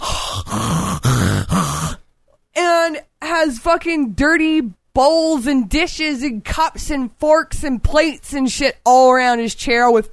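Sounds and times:
man imitating heavy labored breathing: 0:00.0 - 0:02.1
speech: 0:03.0 - 0:10.1.

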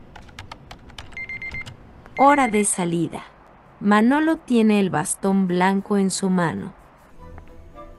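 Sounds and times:
computer keyboard with a braille display typing during programming: 0:00.1 - 0:01.8
speech: 0:02.2 - 0:06.8.

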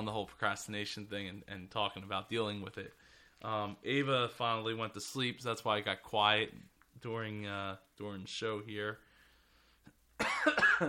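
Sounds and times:
speech: 0:00.0 - 0:09.0, 0:10.2 - 0:10.8
man coughing: 0:10.2 - 0:10.8.

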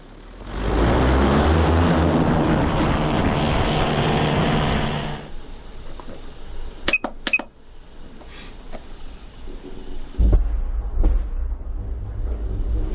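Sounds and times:
attack drone propellers buzzing in flight: 0:00.0 - 0:05.8, 0:11.7 - 0:12.9
low rumbling noise: 0:00.0 - 0:12.9.

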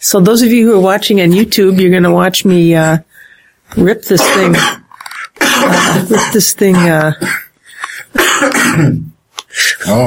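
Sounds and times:
speech: 0:00.0 - 0:03.1, 0:03.7 - 0:04.8, 0:05.4 - 0:07.4, 0:08.1 - 0:10.0
person coughing and hacking: 0:04.2 - 0:07.5, 0:08.1 - 0:09.1.

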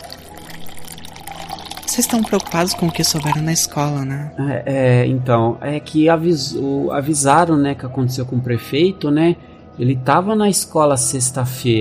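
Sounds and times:
water poured into a glass: 0:00.0 - 0:04.0
speech: 0:02.0 - 0:11.7.

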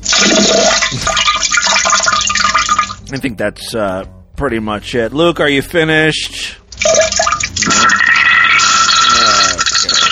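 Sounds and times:
toilet flushing: 0:00.0 - 0:03.0, 0:06.8 - 0:10.0
speech: 0:03.1 - 0:06.6.

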